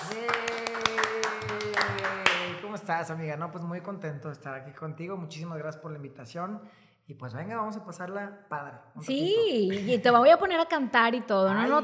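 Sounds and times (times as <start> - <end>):
small group clapping: 0.0 - 2.9
speech: 2.9 - 11.8.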